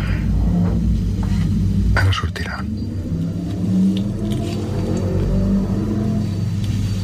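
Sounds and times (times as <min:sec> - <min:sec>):
motorcycle engine revving leaving a residential parking garage: 0:00.2 - 0:07.0
speech: 0:02.2 - 0:03.0.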